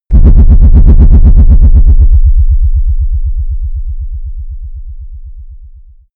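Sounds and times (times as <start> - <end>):
wobble distortion: 0.1 - 4.8.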